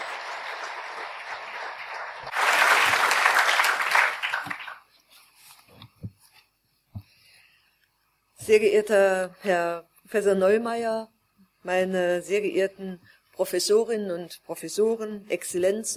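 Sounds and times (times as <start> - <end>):
audience applauding to welcome a guest speaker at a talk: 0.0 - 4.9
speech: 8.5 - 15.9.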